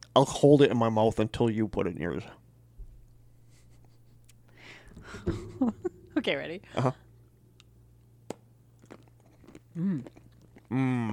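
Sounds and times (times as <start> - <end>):
speech: 0.2 - 2.4, 5.1 - 7.0, 9.8 - 11.1
chewing dark chocolate with crunchy freeze-dried raspberry pieces: 8.7 - 11.1.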